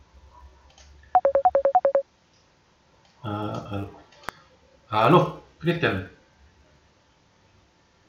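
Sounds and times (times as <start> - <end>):
telephone keypad dialing tones: 1.2 - 2.0
speech: 3.2 - 4.0, 4.9 - 6.2.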